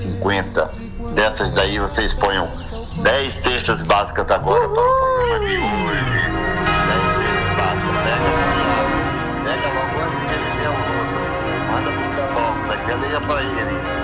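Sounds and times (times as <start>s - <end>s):
busy mix of voices: 0.0s - 14.0s
speech: 0.2s - 6.4s, 13.1s - 14.0s
bell ringing: 5.4s - 14.0s.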